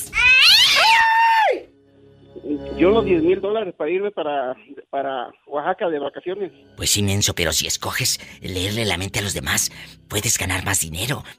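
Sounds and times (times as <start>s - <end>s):
cat yowling and screeching: 0.0s - 1.7s
speech: 2.8s - 11.3s.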